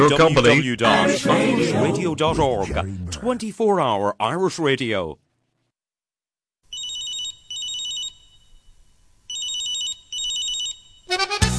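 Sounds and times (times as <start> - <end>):
speech: 0.0 - 5.2
mobile phone ringtone trilling in warbling bursts: 6.7 - 8.5, 9.3 - 11.4.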